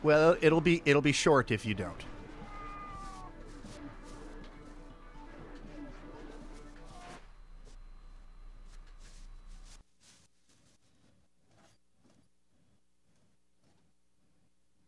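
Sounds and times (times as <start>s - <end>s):
speech: 0.0s - 2.1s
busy noisy room background: 0.0s - 14.8s
several cats meowing: 2.3s - 3.4s.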